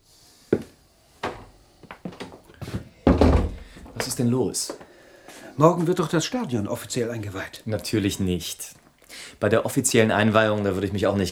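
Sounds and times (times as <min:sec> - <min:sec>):
heavy thud: 0:00.6 - 0:01.5, 0:02.2 - 0:04.2
wooden knocks and rattles: 0:01.2 - 0:04.8
door pushed shut: 0:03.1 - 0:04.2
speech: 0:04.0 - 0:04.8, 0:05.6 - 0:11.3.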